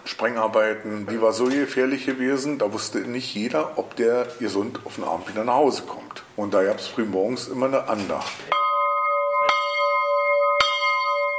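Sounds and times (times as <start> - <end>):
speech: 0.2 - 8.6
bell of a quarry prayer house ringing: 8.5 - 11.3.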